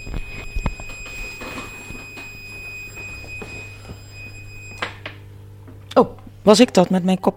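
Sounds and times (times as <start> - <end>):
personal emergency alarm piercing high-pitched tone: 0.0 - 5.1
speech: 6.0 - 7.3.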